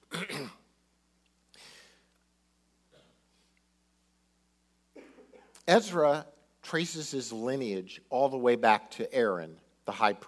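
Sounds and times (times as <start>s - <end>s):
person coughing or clearing throat: 0.0s - 0.7s, 5.0s - 5.6s
quiet room hum: 0.0s - 10.2s
speech: 5.7s - 10.2s.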